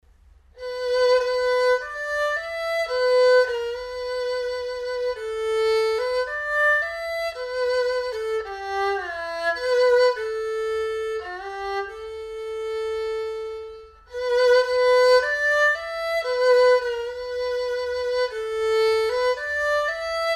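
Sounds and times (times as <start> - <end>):
erhu: 0.5 - 20.3.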